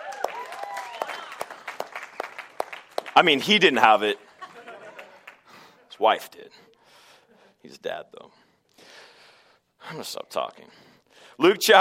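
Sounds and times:
high cheering voices: 0:00.0 - 0:01.8
audience applause: 0:00.0 - 0:03.7, 0:04.7 - 0:05.5
speech: 0:03.2 - 0:04.3, 0:06.0 - 0:06.6, 0:07.6 - 0:08.4, 0:09.9 - 0:10.8, 0:11.4 - 0:11.7
laughter: 0:04.2 - 0:06.0.

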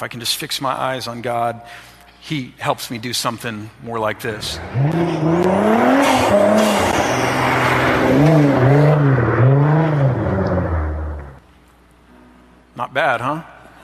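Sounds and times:
speech: 0:00.0 - 0:06.8
car engine roaring: 0:03.7 - 0:11.4
car skidding with squealing tires: 0:04.5 - 0:10.8.

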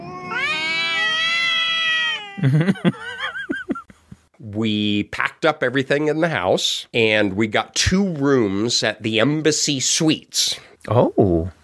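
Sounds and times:
cat yowling and meowing: 0:00.0 - 0:02.4
speech: 0:02.4 - 0:03.4, 0:04.4 - 0:11.6
laughter: 0:02.4 - 0:04.0.

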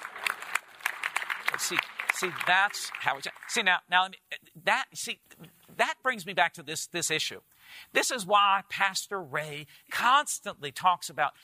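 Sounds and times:
faint scattered hand claps from a distant audience: 0:00.0 - 0:03.6
speech: 0:01.6 - 0:11.4.

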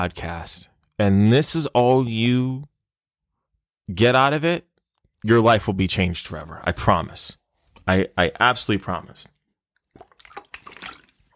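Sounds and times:
speech: 0:00.0 - 0:02.7, 0:03.9 - 0:09.3
person sipping and swallowing water: 0:09.8 - 0:11.3.

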